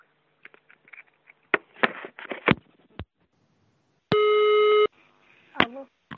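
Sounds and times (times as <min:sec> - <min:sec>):
steady electronic telephone line tone: 0:04.1 - 0:04.9
brief bursts of speech during a telephone call: 0:05.4 - 0:05.9.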